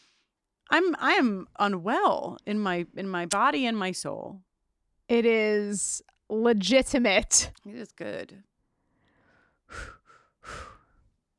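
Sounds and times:
speech: 0.7s - 4.5s, 5.1s - 8.5s, 9.7s - 10.7s
slow relaxed breathing: 8.6s - 11.2s.

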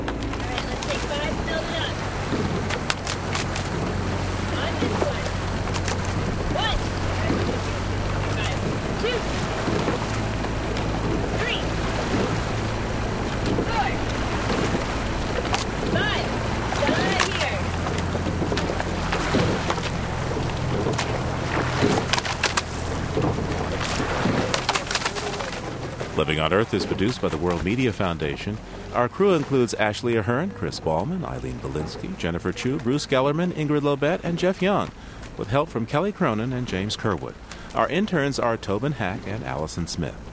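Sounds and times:
rowing shell oars knocking and splashing on the Charles River in Boston: 0.0s - 40.3s
steady low motor drone: 0.0s - 40.3s
indistinct shouting voices: 6.4s - 9.5s, 11.3s - 11.8s, 13.6s - 14.1s, 15.8s - 17.8s
speech: 26.4s - 40.3s.

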